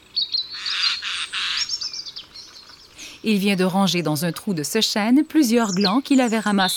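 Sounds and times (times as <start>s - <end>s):
Eurasian jay giving harsh raspy screeching calls on an oak branch in autumn: 0.5s - 1.8s
speech: 3.2s - 6.7s.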